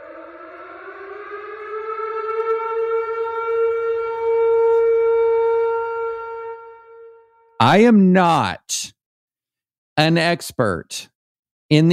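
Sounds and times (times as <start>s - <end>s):
civil defense siren wailing: 0.0s - 7.6s
speech: 7.6s - 9.0s, 10.0s - 11.1s, 11.7s - 11.9s.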